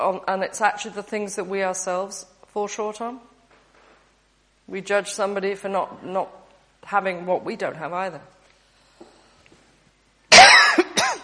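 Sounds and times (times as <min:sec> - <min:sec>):
speech: 0:00.0 - 0:03.3, 0:04.7 - 0:08.4
person coughing, bothered by hospital air conditioning: 0:10.3 - 0:11.2.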